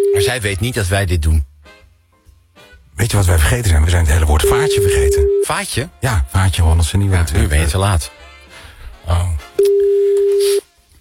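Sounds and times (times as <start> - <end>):
ringing tone of an outgoing telephone call: 0.0 - 0.4, 4.4 - 5.5, 9.6 - 10.5
speech: 0.2 - 1.5, 3.0 - 8.2, 9.0 - 10.6.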